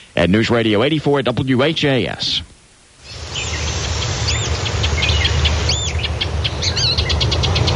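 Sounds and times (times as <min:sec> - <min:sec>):
steady low rumble of outdoor ambience: 0:00.0 - 0:07.7
speech: 0:00.2 - 0:02.5
forest bird song, nuthatch or pine warbler: 0:03.0 - 0:07.7.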